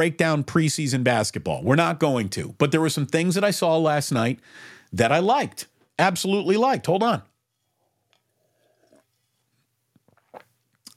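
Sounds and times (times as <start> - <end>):
speech: 0.0 - 7.3
sipping a drink: 8.0 - 10.9
swallowing: 8.2 - 9.3.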